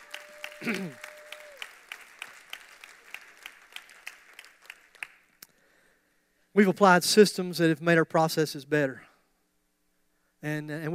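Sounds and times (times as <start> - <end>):
audience clapping and applauding: 0.0 - 5.4
speech: 0.6 - 1.0, 6.6 - 9.1, 10.4 - 10.9.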